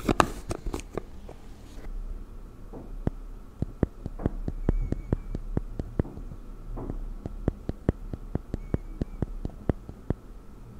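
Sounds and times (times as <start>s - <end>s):
low steady hum: 0.0s - 10.7s
makeup being applied with taps and clicks: 3.0s - 10.2s.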